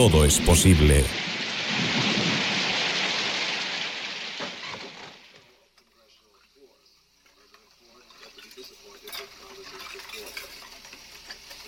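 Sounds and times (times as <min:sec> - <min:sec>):
speech: 0:00.0 - 0:02.0
heavy rain sound effect: 0:00.0 - 0:05.4.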